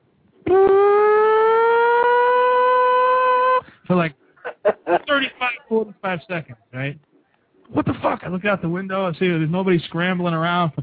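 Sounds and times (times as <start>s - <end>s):
civil defense air raid siren in Brooklyn wailing: 0.5s - 3.7s
laughter: 4.4s - 5.6s
speech: 5.7s - 7.1s, 7.7s - 10.8s.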